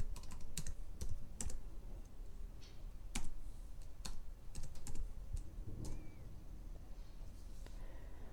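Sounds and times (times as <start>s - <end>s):
typing on a computer keyboard: 0.0s - 1.6s, 3.1s - 6.0s
low steady hum: 0.0s - 8.3s.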